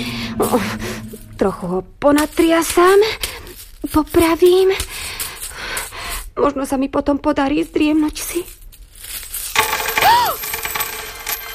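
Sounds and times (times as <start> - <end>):
speech: 0.0 - 4.9, 6.4 - 8.6
coins spilling out of a pillow onto a surface: 8.4 - 11.5.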